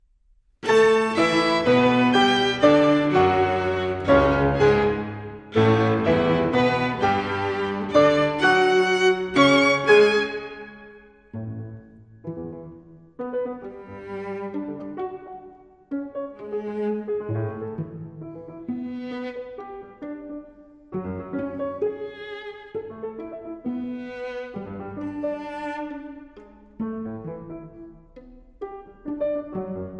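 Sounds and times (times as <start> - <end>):
piano trio playing: 0.6 - 29.9.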